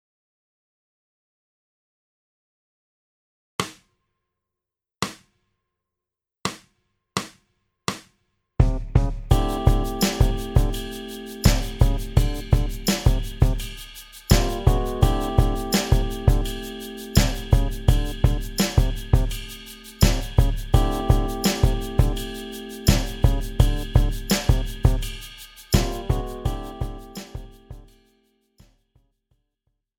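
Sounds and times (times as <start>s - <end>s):
partido alto rhythm: 8.6s - 28.0s.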